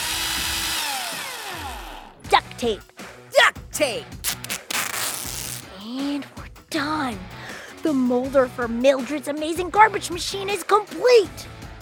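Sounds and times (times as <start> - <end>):
power drill whirring: 0.0 - 2.0
speech: 2.6 - 2.9, 3.8 - 4.2, 5.9 - 11.5.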